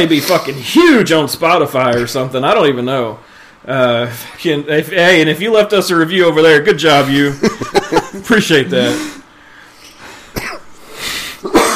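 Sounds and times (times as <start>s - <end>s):
speech: 0.0s - 9.2s
laughter: 7.2s - 9.2s
dry coughs from a throat parched by a heater: 10.3s - 10.7s, 11.4s - 11.7s.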